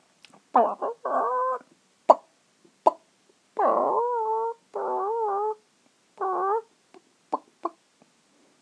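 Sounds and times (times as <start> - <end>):
person imitating a chicken with nasal warbling clucks and squawky calls: 0.6 - 5.6, 6.2 - 6.7, 7.3 - 7.8.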